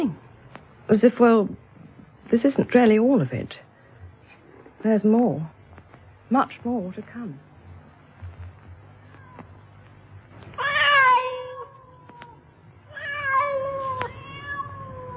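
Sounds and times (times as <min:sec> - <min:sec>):
low hum: 0:00.0 - 0:15.1
speech: 0:00.9 - 0:01.6, 0:02.3 - 0:03.6, 0:04.8 - 0:05.6, 0:06.3 - 0:07.5
cat meowing on a roof: 0:09.0 - 0:09.6, 0:10.6 - 0:15.1.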